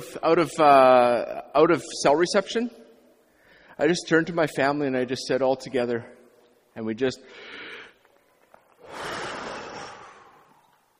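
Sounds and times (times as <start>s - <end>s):
speech: 0.1s - 2.8s, 3.8s - 6.2s, 6.8s - 7.6s
family drawing a deep breath together on an airplane: 3.3s - 3.8s, 7.3s - 8.0s, 8.8s - 10.8s.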